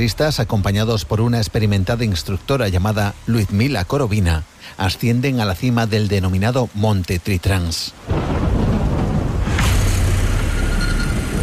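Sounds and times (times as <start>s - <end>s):
speech: 0.0s - 8.5s
heavy rain during a powerful storm on a mountain: 0.0s - 11.4s
wind during a powerful storm on a mountain: 0.0s - 11.4s
thunderclap during a powerful storm on a mountain: 8.0s - 11.4s.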